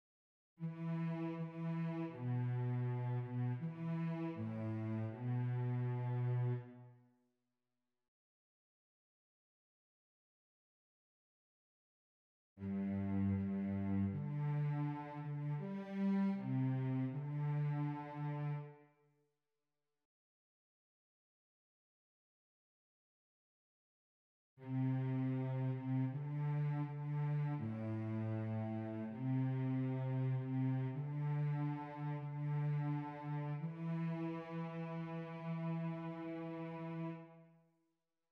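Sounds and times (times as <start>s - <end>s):
cello: 0.6s - 7.0s, 12.6s - 18.9s, 24.6s - 37.6s.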